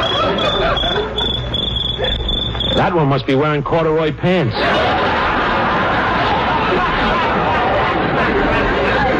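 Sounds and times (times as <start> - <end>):
laughter: 0.0 - 2.3, 4.6 - 9.1
cricket chirping: 0.0 - 2.8
speech: 2.8 - 5.0.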